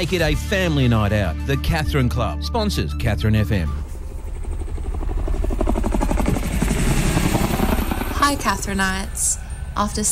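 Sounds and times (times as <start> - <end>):
speech: 0.0 - 3.9, 8.3 - 10.0
helicopter rotor chopping: 3.4 - 10.0.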